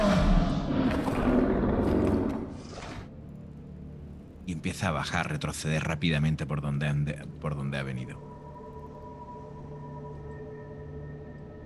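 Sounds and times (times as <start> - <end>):
deep guttural monstrous creature roar: 0.0 - 3.0
speech: 4.6 - 8.4.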